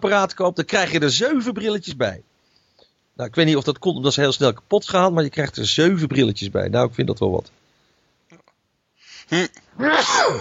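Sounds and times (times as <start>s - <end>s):
speech: 0.0s - 2.3s, 3.2s - 7.6s, 9.3s - 10.3s
sneeze: 9.3s - 10.3s.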